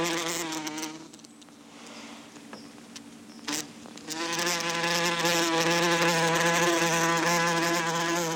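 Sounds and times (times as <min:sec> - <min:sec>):
wasps buzzing: 0:00.0 - 0:01.3, 0:03.3 - 0:08.3.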